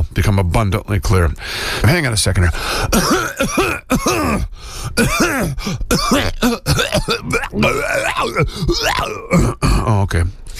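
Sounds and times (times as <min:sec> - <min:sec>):
speech: 0:00.4 - 0:10.4
person clearing throat: 0:02.9 - 0:10.0.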